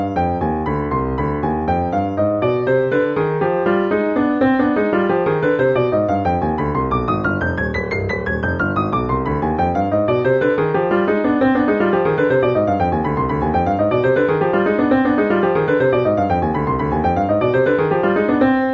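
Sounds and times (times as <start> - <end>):
C minor scale in contrary motion: 0.2 - 18.6.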